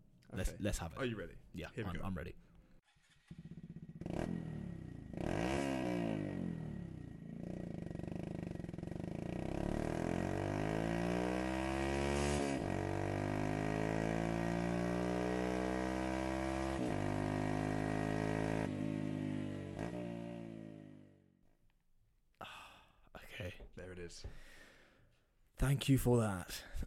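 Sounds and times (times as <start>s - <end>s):
speech: 0.3s - 2.5s, 25.6s - 26.7s
single-cylinder motorcycle with aftermarket exhaust revving into the rev limiter: 2.8s - 21.4s.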